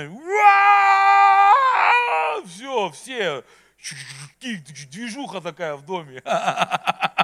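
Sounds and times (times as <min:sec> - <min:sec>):
speech: 0:00.0 - 0:00.5, 0:02.8 - 0:07.1
person's voice imitating a baby crying at night for breast milk: 0:00.2 - 0:02.5
laughter: 0:06.2 - 0:07.2.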